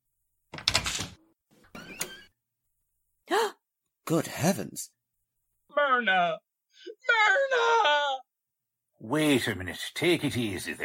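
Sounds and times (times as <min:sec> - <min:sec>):
door creaking and scraping open: 0:00.5 - 0:02.4
speech: 0:04.1 - 0:05.0, 0:05.8 - 0:08.0, 0:09.0 - 0:10.8.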